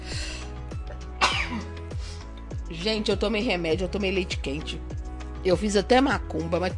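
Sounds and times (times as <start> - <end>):
person sneezing from allergies: 1.2 - 2.2
speech: 2.7 - 6.7.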